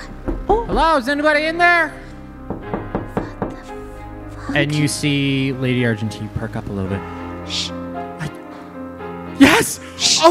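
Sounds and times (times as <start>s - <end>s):
firm knocks on the back door of a lodge: 0.2s - 0.8s, 2.4s - 3.7s
speech: 0.8s - 2.0s, 4.5s - 7.8s, 9.6s - 10.2s.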